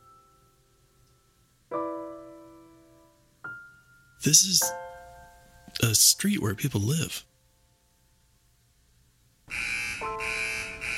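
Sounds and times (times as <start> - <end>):
speech: 4.2 - 4.8, 5.8 - 7.3
shrill electronic car wash alarm signal: 9.5 - 10.9.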